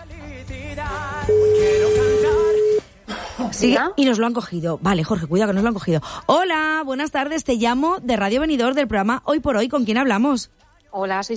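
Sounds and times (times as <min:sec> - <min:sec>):
music-like sound: 0:00.0 - 0:11.3
ringback tone from an outgoing phone call: 0:01.2 - 0:02.9
speech: 0:03.5 - 0:11.3.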